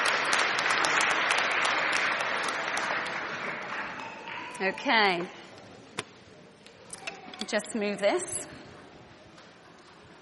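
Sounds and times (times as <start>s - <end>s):
room full of people clapping: 0.0s - 5.2s
speech: 4.6s - 5.4s, 7.5s - 8.6s.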